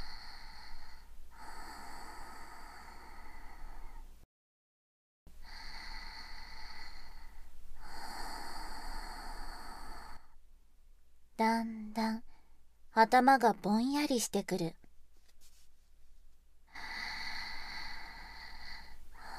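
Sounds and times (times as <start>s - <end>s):
person breathing out deeply as a release of tension: 0.0s - 4.1s, 5.4s - 10.4s, 16.7s - 19.3s
speech: 11.4s - 12.2s, 13.0s - 14.8s.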